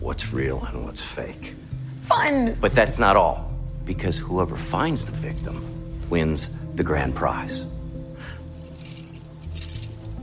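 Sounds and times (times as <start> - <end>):
low steady hum of music: 0.0 - 10.2
speech: 0.2 - 7.7
bunch of car keys jangling: 8.6 - 10.2.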